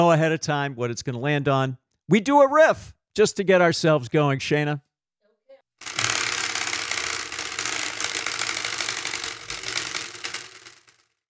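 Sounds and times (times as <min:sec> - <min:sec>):
speech: 0:00.0 - 0:04.9
sixteen-segment prize wheel spinning with ratcheting clatter: 0:05.8 - 0:11.2.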